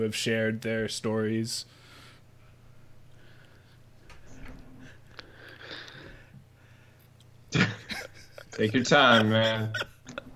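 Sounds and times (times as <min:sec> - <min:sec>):
speech: 0:00.0 - 0:01.8, 0:08.6 - 0:09.9
breathy rustling: 0:01.7 - 0:07.1
laughter: 0:07.6 - 0:10.3.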